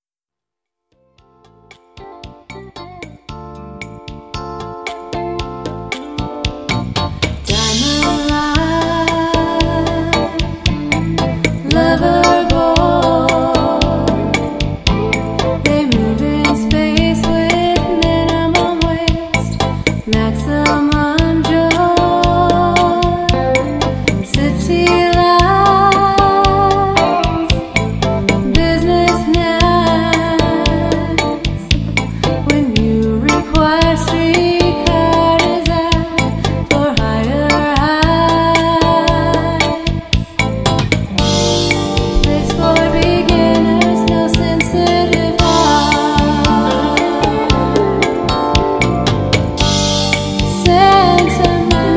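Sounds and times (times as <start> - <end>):
jazz band playing: 2.0 - 36.9, 38.3 - 51.9
female vocals: 7.4 - 14.8, 15.6 - 31.8, 32.4 - 40.2, 42.0 - 48.4, 50.4 - 51.9.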